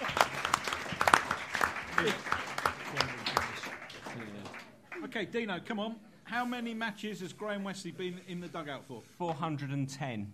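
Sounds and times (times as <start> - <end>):
crowd applauding: 0.0 - 5.2
speech: 2.0 - 2.3, 5.2 - 10.3.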